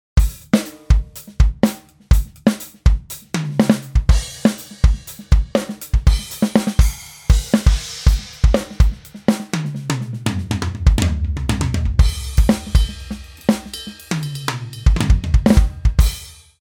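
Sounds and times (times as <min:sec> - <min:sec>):
drum: 0:00.2 - 0:16.5.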